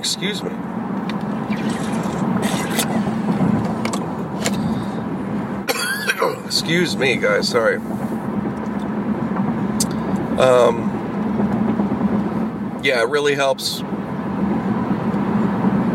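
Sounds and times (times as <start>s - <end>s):
speech: 0.0s - 0.9s, 6.5s - 8.1s, 10.4s - 10.9s, 12.8s - 13.9s
low road rumble of traffic: 0.0s - 15.9s
man coughing: 2.4s - 3.2s, 5.7s - 6.5s.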